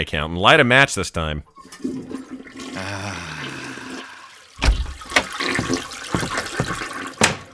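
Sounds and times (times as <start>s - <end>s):
speech: 0.0s - 2.0s
toilet flushing: 1.4s - 7.5s
sharp clunks: 4.6s - 5.3s, 7.2s - 7.5s.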